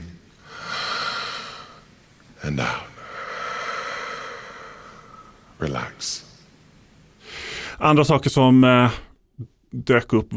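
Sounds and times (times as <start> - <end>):
deep controlled breathwork breath drawn through the nose: 0.4 - 1.8, 3.0 - 5.5, 7.2 - 7.8
speech: 2.5 - 2.9, 5.6 - 6.3, 7.8 - 10.3.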